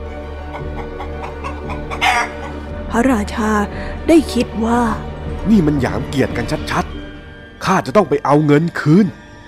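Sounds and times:
chicken clucking and squawking: 0.4s - 2.6s
speech: 2.9s - 6.9s, 7.7s - 9.2s.

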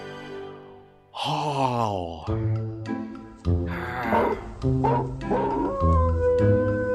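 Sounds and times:
man yawning into an imitated wolf howl: 1.2s - 2.3s, 3.7s - 6.9s
speech: 1.2s - 5.2s.

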